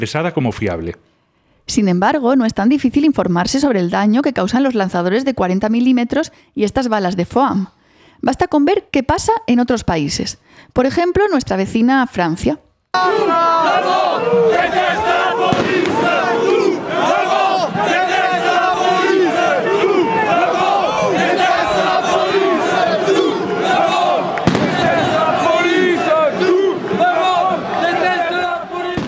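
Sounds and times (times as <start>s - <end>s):
speech: 0.0s - 1.1s, 1.7s - 17.1s
yellow vest protest crowd chanting slogans during a Paris march against police violence: 13.0s - 29.0s.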